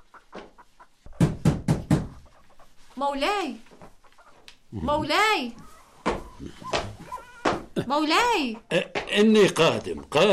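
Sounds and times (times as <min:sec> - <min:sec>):
firm knocks on a wooden door: 0:01.2 - 0:02.1
speech: 0:03.0 - 0:03.7, 0:04.7 - 0:05.6, 0:07.8 - 0:10.3.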